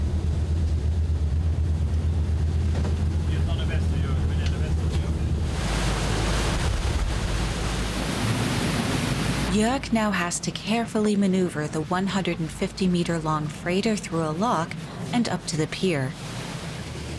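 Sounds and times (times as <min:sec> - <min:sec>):
sea waves churning around a pilot boat: 0:00.0 - 0:17.1
steady low boat engine rumble: 0:00.0 - 0:17.1
speech: 0:09.6 - 0:16.4.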